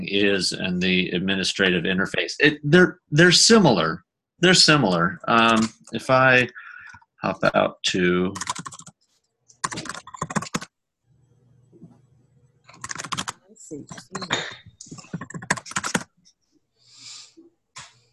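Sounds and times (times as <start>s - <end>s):
speech: 0.1s - 6.6s, 7.2s - 8.5s, 13.7s - 14.6s
fast clicky typing on a computer keyboard: 8.4s - 9.0s, 9.6s - 10.7s, 12.7s - 14.2s, 15.0s - 16.1s.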